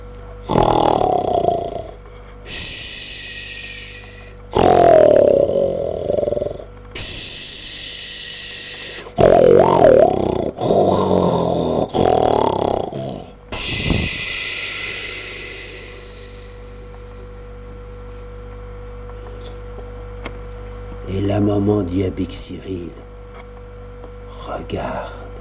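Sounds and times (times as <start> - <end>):
voice imitating a snoring wolf with rough snorts and hissing exhales: 0.4 - 16.5
speech: 21.7 - 23.0.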